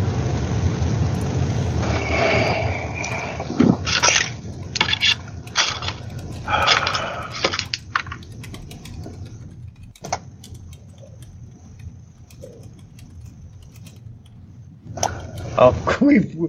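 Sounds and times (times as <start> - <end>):
low hum: 0.0 - 16.4
typing on a computer keyboard: 3.1 - 3.3, 3.9 - 15.8.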